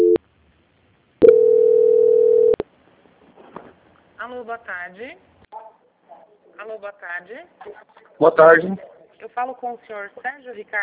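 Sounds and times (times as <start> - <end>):
telephone call-transfer tone: 0.0 - 0.2, 1.2 - 2.6
speech: 4.3 - 5.3, 6.6 - 10.8.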